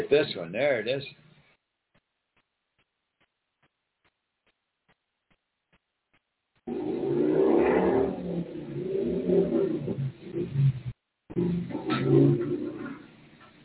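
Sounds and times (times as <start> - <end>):
speech: 0.0 - 1.3
motorcycle engine revving and shifting gears: 6.7 - 13.2.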